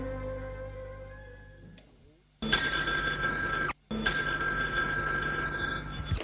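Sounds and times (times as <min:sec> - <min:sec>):
telephone bell ringing in a police commissioner's office: 0:02.6 - 0:06.2.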